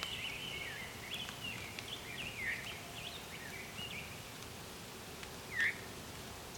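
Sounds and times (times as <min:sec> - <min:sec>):
orchard oriole singing whistly warbled phrases: 0:00.0 - 0:04.3, 0:05.4 - 0:05.9
faint outdoor hiss: 0:00.0 - 0:06.5.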